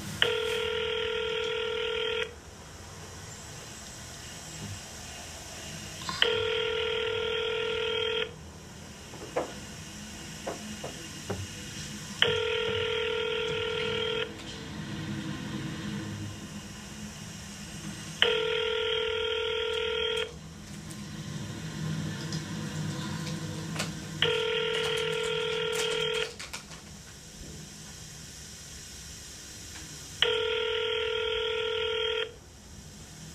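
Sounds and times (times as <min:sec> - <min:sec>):
buzzing telephone tones of a call being placed: 0:00.2 - 0:02.4, 0:06.1 - 0:08.5, 0:09.1 - 0:20.6, 0:21.4 - 0:26.4, 0:30.2 - 0:32.4.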